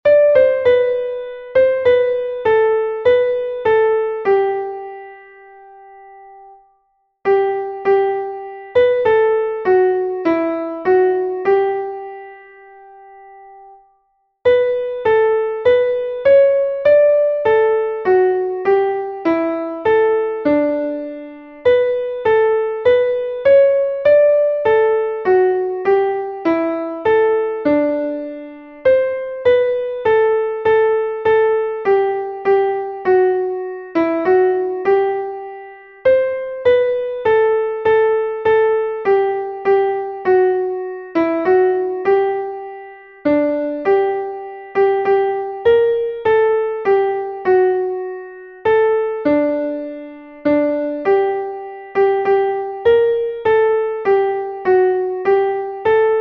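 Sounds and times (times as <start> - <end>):
piano piece: 0.0 - 56.1.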